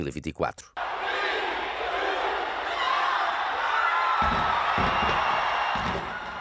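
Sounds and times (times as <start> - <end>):
speech: 0.0 - 0.8
large crowd cheering in the streets of Auckland New Zealand at New Year: 0.8 - 6.3
deep thumps booming: 4.2 - 6.3.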